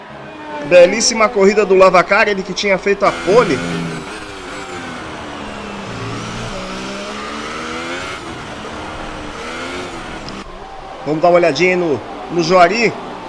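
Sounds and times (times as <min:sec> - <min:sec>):
high-revving McLaren and Mercedes race car engines screaming past during a race: 0:00.0 - 0:12.3
speech: 0:00.6 - 0:04.1, 0:11.1 - 0:13.0.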